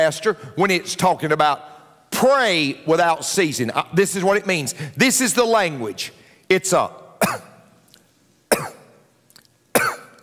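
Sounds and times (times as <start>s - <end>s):
speech: 0.0s - 7.5s
person hacking coughing: 7.2s - 7.6s, 8.5s - 9.0s, 9.7s - 10.2s.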